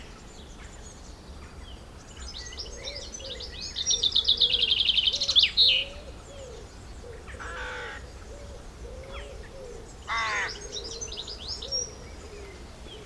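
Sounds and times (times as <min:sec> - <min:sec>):
bright bird chirping: 0:00.0 - 0:13.0
soft low cooing notes in countryside: 0:02.6 - 0:13.0.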